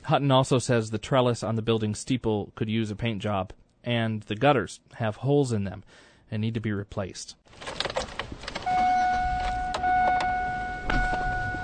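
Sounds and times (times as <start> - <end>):
speech: 0.1 - 7.8
clicks and thumps from car doors and handles: 7.6 - 11.6
steady electronic tone in a car: 8.7 - 11.6.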